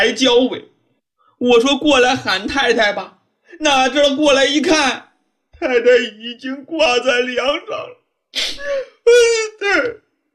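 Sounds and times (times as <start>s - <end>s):
speech: 0.0s - 0.7s, 1.4s - 10.0s
woman crying and wailing: 8.5s - 9.4s.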